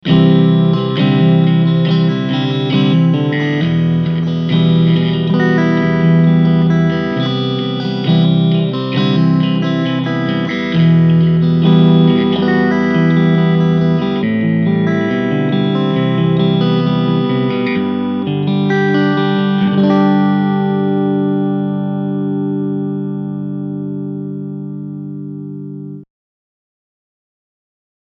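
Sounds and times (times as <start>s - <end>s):
clean guitar strumming through a Vox AC10C1 amplifier: 0.0s - 26.0s.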